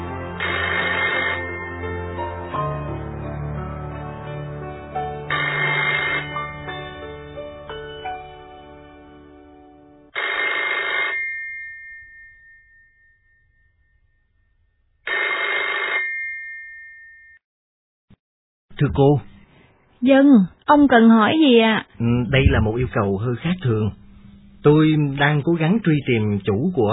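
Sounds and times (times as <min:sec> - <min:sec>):
telephone ringing with a bright electronic trill on a call to a switchboard: 0:00.4 - 0:01.9, 0:05.3 - 0:06.6, 0:10.1 - 0:12.7, 0:15.1 - 0:17.1
speech: 0:18.8 - 0:19.3, 0:20.0 - 0:24.0, 0:24.6 - 0:26.9.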